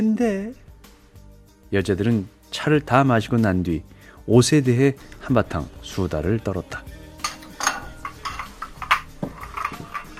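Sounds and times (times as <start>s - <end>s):
speech: 0.0s - 0.6s, 1.7s - 6.9s
teacups and teapot clinking as they are cleared away: 7.1s - 10.1s.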